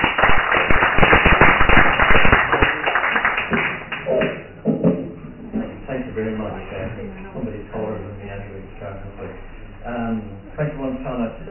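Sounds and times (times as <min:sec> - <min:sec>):
crowd applause for a poet: 0:00.0 - 0:04.4
speech: 0:06.2 - 0:11.5.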